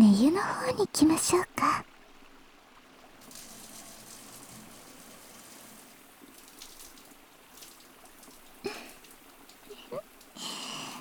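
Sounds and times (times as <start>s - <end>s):
speech: 0.3s - 1.9s
shower water spraying rinsing soap foam in a bath: 3.2s - 10.9s.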